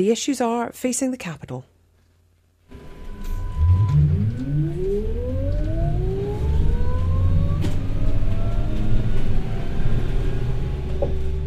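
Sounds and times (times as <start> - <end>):
speech: 0.0 - 1.7
city bus in Wellington on a rainy spring day rumbling and pulling away: 2.8 - 11.4
street noise in Wellington on a rainy spring day: 2.8 - 11.4.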